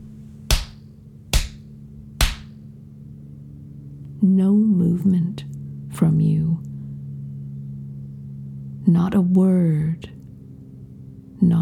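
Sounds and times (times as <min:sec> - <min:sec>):
faint low hum: 0:00.0 - 0:11.6
hand slaps on skin in a deliberate spanking: 0:00.5 - 0:00.8, 0:01.4 - 0:02.6
speech: 0:04.2 - 0:06.4, 0:09.0 - 0:10.2, 0:11.4 - 0:11.6.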